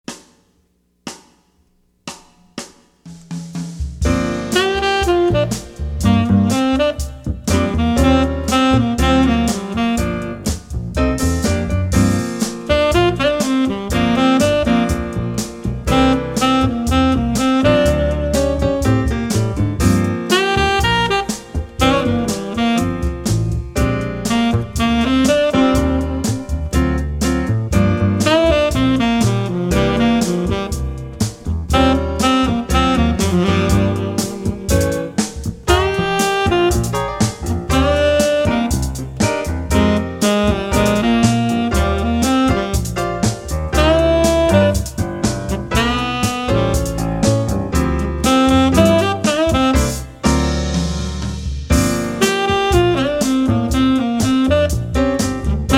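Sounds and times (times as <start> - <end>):
funky trumpet music: 4.0 - 55.7.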